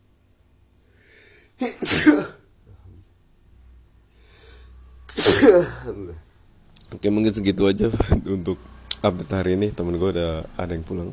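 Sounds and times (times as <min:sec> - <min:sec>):
speech: 0:01.6 - 0:02.2, 0:05.4 - 0:06.3, 0:06.9 - 0:11.1
person sneezing: 0:01.6 - 0:02.5, 0:05.1 - 0:06.1.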